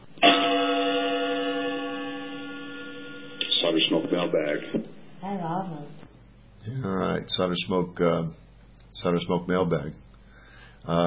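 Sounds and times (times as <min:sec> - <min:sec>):
gong struck as a show segment cue: 0:00.2 - 0:04.8
speech: 0:04.2 - 0:10.0, 0:10.8 - 0:11.0.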